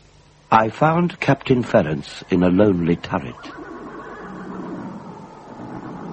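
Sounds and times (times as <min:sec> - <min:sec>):
steady rumble: 0:00.0 - 0:06.1
speech: 0:00.5 - 0:03.6
horses whinnying in a stable: 0:03.3 - 0:06.1.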